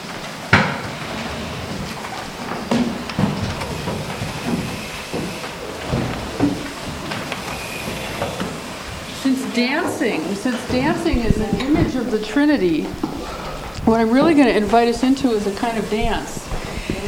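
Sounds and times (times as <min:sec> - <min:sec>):
many chairs scraping and clunking across a hard floor: 0:00.0 - 0:17.0
speech: 0:09.6 - 0:13.1, 0:13.9 - 0:16.4.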